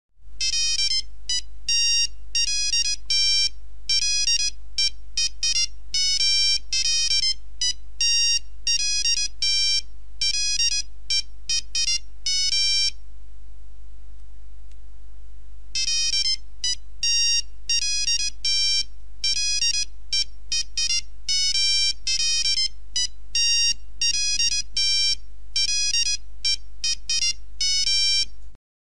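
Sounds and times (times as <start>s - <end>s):
original Nokia 3310 mobile phone ringtones: 0.4s - 13.0s, 15.8s - 28.3s.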